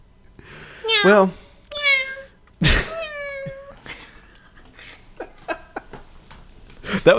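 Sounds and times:
person imitating cat meows: 0:00.9 - 0:02.3, 0:02.9 - 0:03.7
speech: 0:01.0 - 0:01.4.

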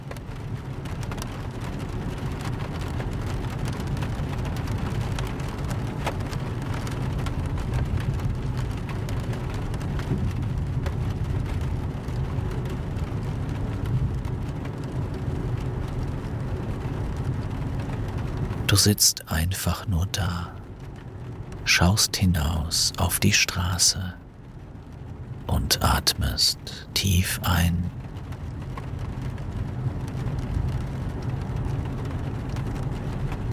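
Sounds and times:
steady rain pattering on a surface: 0:00.0 - 0:33.5
speech: 0:18.8 - 0:20.6, 0:21.7 - 0:24.2, 0:25.7 - 0:28.0.

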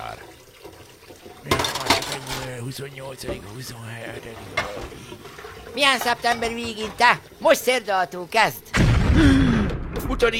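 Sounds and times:
dishes clinking during washing up: 0:01.4 - 0:02.6, 0:04.4 - 0:07.1
speech: 0:02.6 - 0:10.3.

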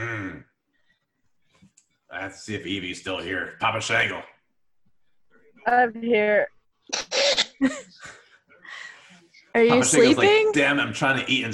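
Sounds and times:
speech: 0:02.2 - 0:04.3, 0:05.6 - 0:08.2, 0:09.5 - 0:11.5
person sneezing: 0:06.9 - 0:07.7.

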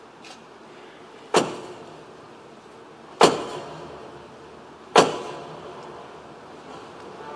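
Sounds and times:
heavy booming strikes on large cathedral doors: 0:01.3 - 0:02.1, 0:03.2 - 0:04.2, 0:04.9 - 0:05.8.

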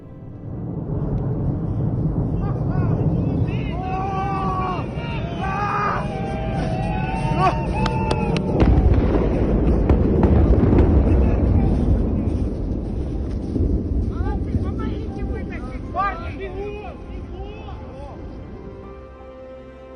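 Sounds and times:
heavy rumbling roar of burning plane falling: 0:00.0 - 0:18.9
excited onlookers shouting and cheering outdoors: 0:03.2 - 0:09.4.

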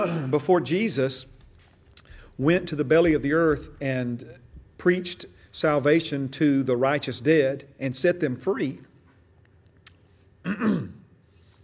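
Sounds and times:
speech: 0:00.0 - 0:01.4, 0:02.4 - 0:08.9, 0:10.4 - 0:11.0
person clearing throat and coughing from a tickle in the throat: 0:10.4 - 0:11.1.

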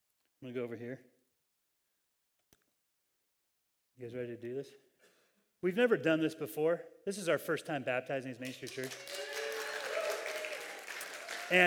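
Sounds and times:
speech: 0:00.4 - 0:01.2, 0:04.0 - 0:04.9, 0:05.6 - 0:09.3, 0:11.5 - 0:11.6
crowd clapping: 0:08.4 - 0:11.6.

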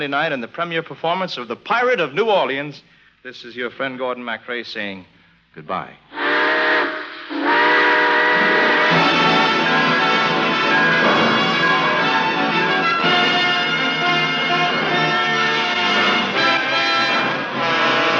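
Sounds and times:
speech: 0:00.0 - 0:06.1
steam train whistle blowing a multi-tone chord: 0:06.1 - 0:18.1.

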